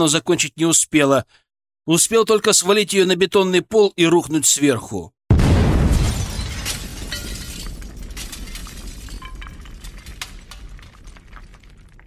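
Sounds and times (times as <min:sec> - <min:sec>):
speech: 0:00.0 - 0:05.2
loud explosion in a station: 0:05.3 - 0:12.0
glass shattering: 0:05.8 - 0:12.0
plaster and tile pieces raining onto a concrete floor: 0:06.0 - 0:12.0.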